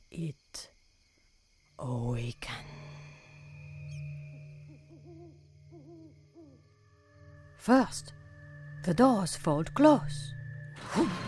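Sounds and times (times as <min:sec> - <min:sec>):
speech: 0:00.2 - 0:00.7, 0:01.8 - 0:02.7, 0:07.6 - 0:08.2, 0:08.8 - 0:11.2
owl hooting outside at night: 0:02.7 - 0:09.2.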